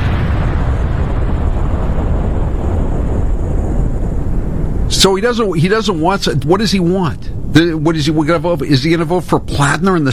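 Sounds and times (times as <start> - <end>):
deep roaring rumble of a bomb explosion sound effect: 0.0 - 10.1
speech: 5.0 - 10.1.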